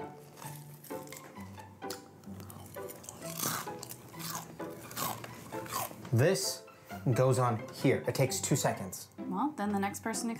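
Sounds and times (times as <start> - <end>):
loud crunchy chewing: 0.1 - 6.1
speech: 6.1 - 10.3.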